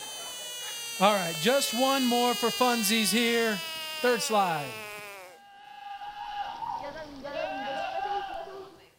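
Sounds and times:
speech: 1.0s - 4.9s
goat bleating: 2.1s - 8.7s.

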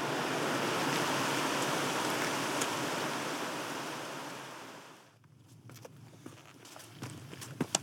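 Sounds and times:
rushing water: 0.0s - 5.1s
hiking-boot footsteps on a rough mountain path: 5.2s - 7.8s.

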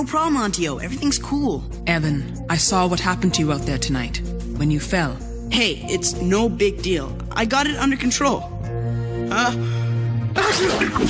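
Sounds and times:
speech: 0.0s - 8.5s, 9.3s - 9.8s, 10.4s - 11.0s
person sneezing: 10.4s - 11.0s.

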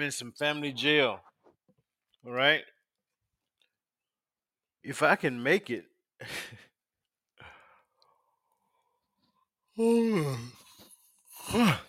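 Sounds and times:
speech: 0.0s - 1.3s, 2.2s - 2.7s, 4.8s - 6.7s, 9.8s - 10.6s, 11.4s - 11.8s
quiet breaths: 7.4s - 9.5s
person yawning: 9.8s - 11.8s.

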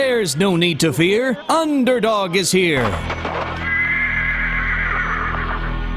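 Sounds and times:
speech: 0.0s - 3.7s
sharp irregular clattering beats: 2.8s - 3.7s
horse neighing: 3.6s - 5.8s.

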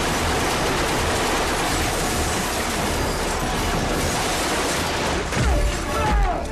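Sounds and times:
dense barrage of rapid gunfire: 0.0s - 5.8s.

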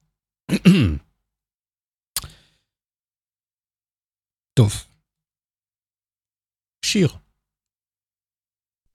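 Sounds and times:
person coughing: 0.5s - 1.1s
rasping throat clearing: 0.5s - 1.2s
speech: 0.6s - 1.0s, 4.6s - 4.9s, 6.9s - 7.2s.

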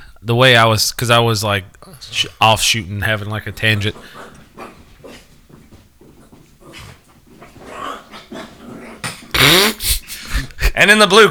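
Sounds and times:
speech: 0.2s - 4.7s, 10.8s - 11.2s
small dog growling: 3.5s - 10.6s.

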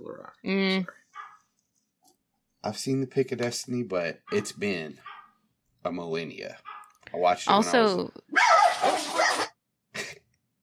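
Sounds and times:
speech: 0.4s - 1.0s, 2.6s - 5.1s, 5.8s - 9.1s
dog barking: 1.1s - 1.5s, 4.2s - 5.4s, 6.6s - 6.9s, 8.3s - 9.5s.

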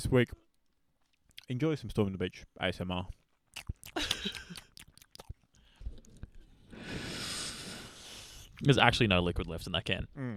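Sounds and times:
speech: 0.0s - 0.5s, 1.5s - 4.4s, 8.6s - 10.3s
crunchy chewing of sausages by several people: 3.1s - 6.6s.

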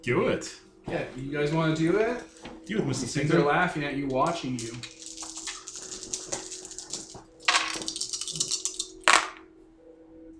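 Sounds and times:
speech: 0.0s - 5.0s
three dice rattling across a hard surface: 4.2s - 9.4s.

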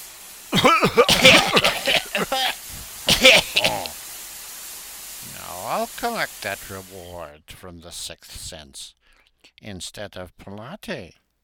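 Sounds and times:
tear gas bomb hissing: 0.0s - 6.6s
people coughing, gasping and sputtering: 0.6s - 3.9s
speech: 5.8s - 11.2s.

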